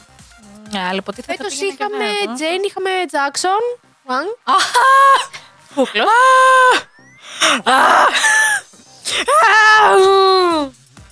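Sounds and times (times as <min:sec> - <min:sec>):
speech: 0:00.7 - 0:08.4, 0:09.1 - 0:10.8
excited screaming and shrieks: 0:04.5 - 0:10.7
gasping breaths: 0:05.2 - 0:09.4.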